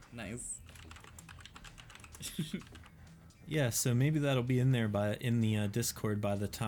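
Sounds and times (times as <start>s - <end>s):
speech: 0.1s - 1.0s, 2.2s - 6.6s
typing on a computer keyboard: 0.6s - 3.0s.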